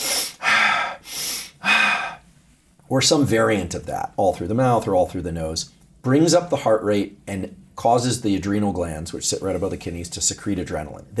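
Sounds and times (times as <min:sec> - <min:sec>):
rapid deep breathing from a deliberate hyperventilation exercise: 0:00.0 - 0:02.6
speech: 0:02.9 - 0:11.1.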